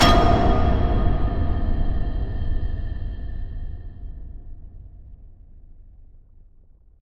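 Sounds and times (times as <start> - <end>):
heavy horror stinger: 0.0 - 6.0.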